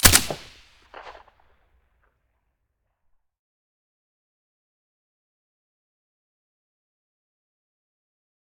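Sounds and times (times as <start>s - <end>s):
SCAR rifle with silencer: 0.0s - 1.3s.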